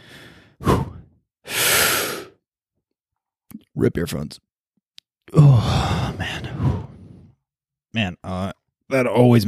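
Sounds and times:
person taking a deep breath: 0:00.0 - 0:02.4, 0:05.4 - 0:07.4
speech: 0:03.8 - 0:04.5, 0:07.9 - 0:09.4.

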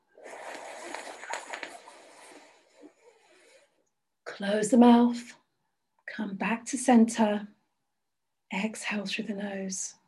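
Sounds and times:
person inhaling through the mouth during a guided breathing exercise: 0:00.3 - 0:03.8
speech: 0:04.4 - 0:05.4, 0:06.2 - 0:07.6, 0:08.5 - 0:10.0.

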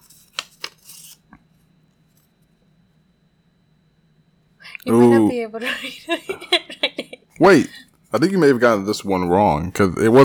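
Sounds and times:
paper shuffling near the microphone: 0:00.0 - 0:01.3
speech: 0:04.9 - 0:06.6, 0:07.4 - 0:10.2
laughter: 0:04.9 - 0:08.6.

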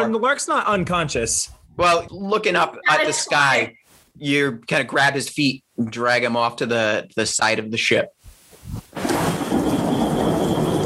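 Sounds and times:
speech: 0:00.0 - 0:08.8
deep rumble of thunder: 0:08.7 - 0:10.8
heavy rain in a thunderstorm: 0:08.9 - 0:10.8.

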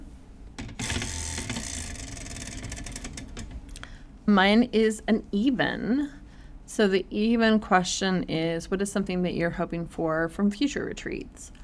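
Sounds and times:
prize wheel being spun: 0:00.6 - 0:03.6
speech: 0:04.3 - 0:11.6.

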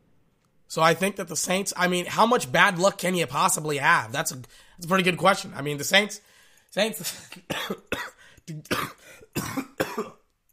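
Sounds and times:
speech: 0:00.7 - 0:10.1
person giving harsh hacking coughs: 0:07.1 - 0:10.3.

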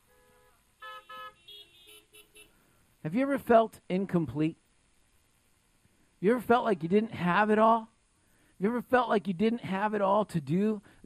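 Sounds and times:
car horn honks: 0:00.0 - 0:02.6
speech: 0:03.0 - 0:04.6, 0:06.2 - 0:07.9, 0:08.6 - 0:11.0.

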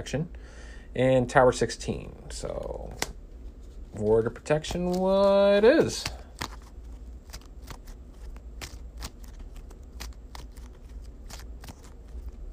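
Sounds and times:
speech: 0:00.0 - 0:03.2, 0:03.9 - 0:06.2
playing cards being shuffled: 0:02.8 - 0:12.5.

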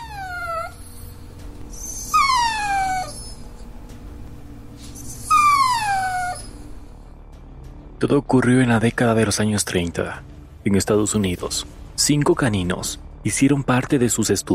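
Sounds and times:
dog whimpering: 0:00.0 - 0:03.8, 0:04.7 - 0:06.9
low hum: 0:00.0 - 0:12.9
speech: 0:08.0 - 0:14.5.

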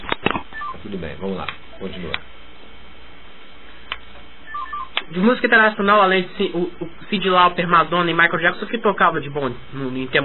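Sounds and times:
quiet hum: 0:00.0 - 0:10.2
speech: 0:00.9 - 0:02.4, 0:05.1 - 0:10.2
mobile phone message notification beeps: 0:04.5 - 0:04.9.

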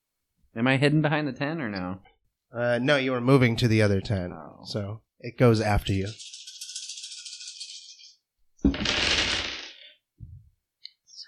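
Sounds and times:
speech: 0:00.5 - 0:06.3
many dice tumbling and clacking together: 0:06.1 - 0:08.1, 0:08.7 - 0:09.9.

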